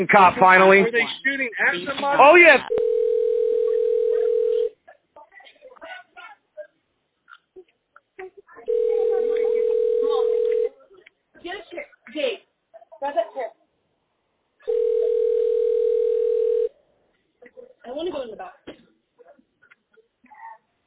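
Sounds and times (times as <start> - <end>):
speech: 0.0 - 2.9
telephone ringback tone on an unanswered 911 call: 2.7 - 4.7, 8.7 - 10.7, 14.7 - 16.7.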